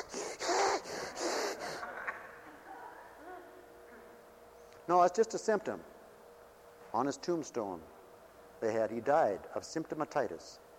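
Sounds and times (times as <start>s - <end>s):
man imitating heavy breathing through the nose: 0.0s - 1.8s
speech: 4.9s - 6.0s, 6.9s - 8.0s, 8.6s - 10.6s.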